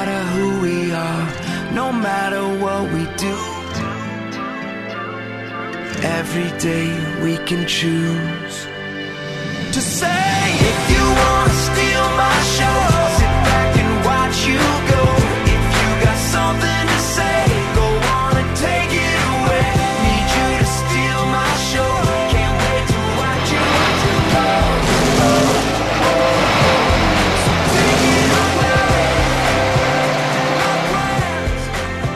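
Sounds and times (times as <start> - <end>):
loud full music track: 0.0 - 32.1
speech: 1.8 - 3.6, 6.0 - 8.7, 9.8 - 11.5
race car engines taking off and accelerating: 9.5 - 32.1.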